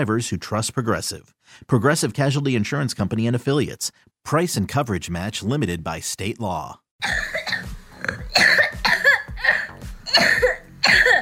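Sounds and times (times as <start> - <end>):
speech: 0.0 - 8.2
harsh chesty coughs: 7.0 - 11.2
gasping breaths: 9.4 - 9.8.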